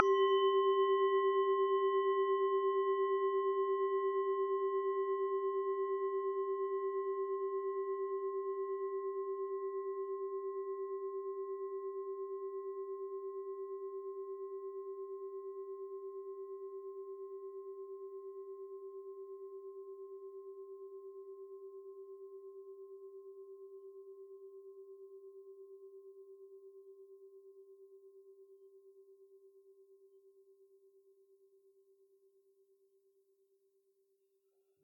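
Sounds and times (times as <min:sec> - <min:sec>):
singing bowl: 0:00.0 - 0:25.7.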